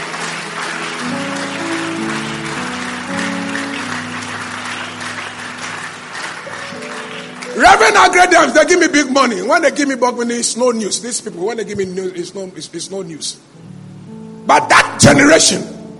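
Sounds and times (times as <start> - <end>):
crowd clapping: 0.0 - 8.9
speech: 7.8 - 13.7, 14.5 - 15.8.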